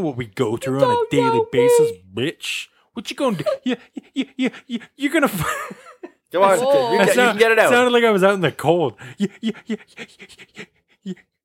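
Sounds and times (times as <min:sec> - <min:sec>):
speech: 0:00.0 - 0:11.3
laughter: 0:03.2 - 0:07.9
person panting rapidly like an excited dog: 0:09.0 - 0:11.4.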